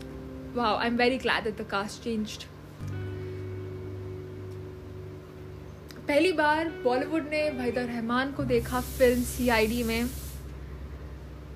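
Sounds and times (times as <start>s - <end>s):
speech: 0.5s - 3.0s, 6.1s - 10.2s
pressure cooker whistle hissing: 8.7s - 10.4s.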